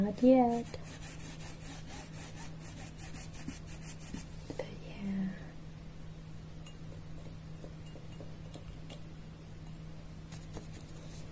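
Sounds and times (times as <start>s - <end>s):
speech: 0.0s - 1.1s
faint low hum: 0.0s - 11.2s
brush rubbing against a surface: 0.4s - 4.4s.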